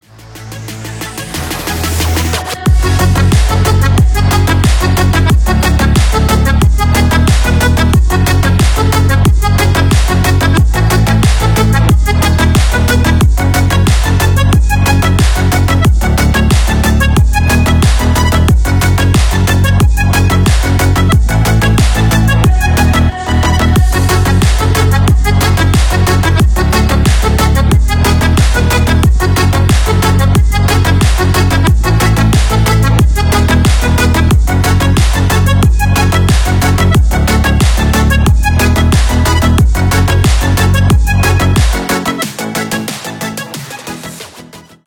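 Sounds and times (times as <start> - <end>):
accordion house music: 0.2 - 44.5.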